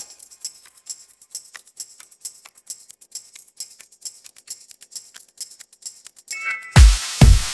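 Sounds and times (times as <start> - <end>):
K-pop ringtone: 6.3 - 7.2.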